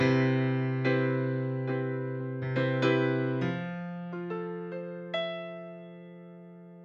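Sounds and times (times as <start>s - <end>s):
C major 7 jazz grand piano chord: 0.0s - 6.8s.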